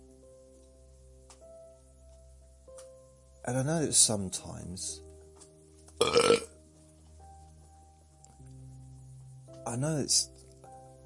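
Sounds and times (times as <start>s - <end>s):
speech: 3.4s - 5.1s, 9.8s - 10.4s
loud burp: 6.0s - 6.6s
throaty croaking belch: 6.0s - 6.6s.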